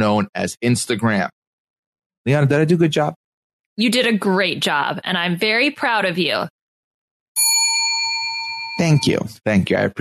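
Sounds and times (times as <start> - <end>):
speech: 0.0 - 1.4, 2.2 - 3.2, 3.8 - 6.6, 8.8 - 10.0
bell struck with a bright metallic ring: 7.4 - 9.3.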